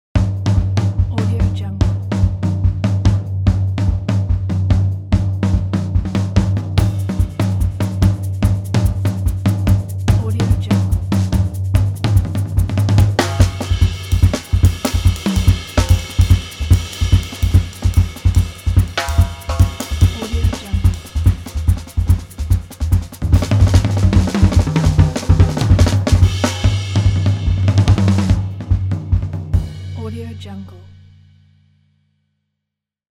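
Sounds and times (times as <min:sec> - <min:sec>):
jazz drums: 0:00.1 - 0:31.3.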